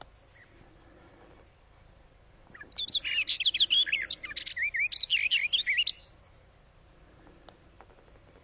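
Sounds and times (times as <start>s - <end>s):
barred warbler song of harsh chatters and whistled slurs: 0.0s - 8.4s.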